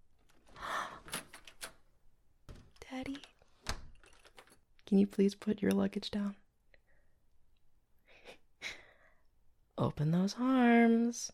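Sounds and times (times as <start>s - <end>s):
door opening with a soft rushing swell: 0.2s - 4.7s
sharp clicks and knocks of the door latch and frame: 2.5s - 4.7s
speech: 3.0s - 3.3s, 4.9s - 6.4s, 9.8s - 11.3s.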